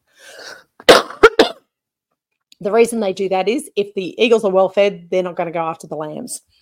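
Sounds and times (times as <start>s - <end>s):
breathy intake: 0.1s - 0.8s
person coughing sharply: 0.4s - 1.7s
speech: 2.6s - 6.6s.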